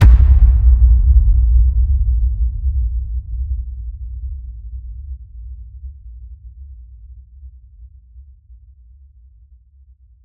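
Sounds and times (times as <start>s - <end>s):
designed cinematic boom hit: 0.0s - 3.9s.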